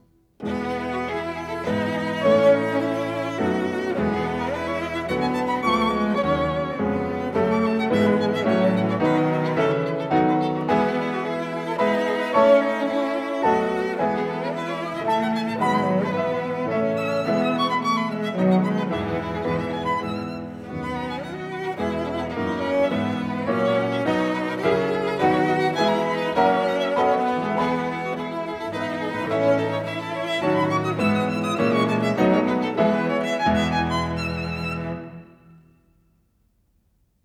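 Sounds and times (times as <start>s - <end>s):
piano trio playing in A minor: 0.0s - 35.6s.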